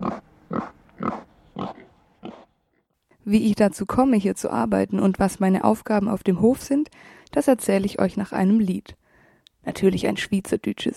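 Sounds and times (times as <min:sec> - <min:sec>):
alpine pig grunting on a Swiss mountain farm: 0:00.0 - 0:02.6
speech: 0:03.3 - 0:09.0, 0:09.6 - 0:10.9.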